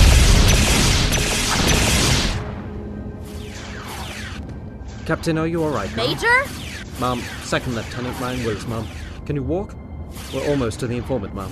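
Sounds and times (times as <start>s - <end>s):
gunfire being returned during a combat mission in a video game: 0.0s - 2.5s
speech: 5.1s - 11.5s.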